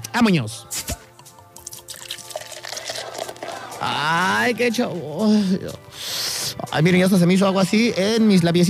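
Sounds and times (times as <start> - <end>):
speech: 0.2 - 0.8, 3.8 - 5.9, 6.7 - 8.6
person imitating beer being poured and gulped with mouth sounds: 0.8 - 3.8.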